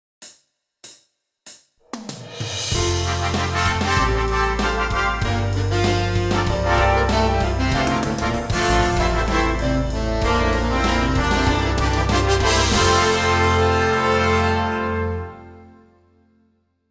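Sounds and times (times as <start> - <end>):
basic daily instrument warm-up exercise in C: 2.6 - 15.5.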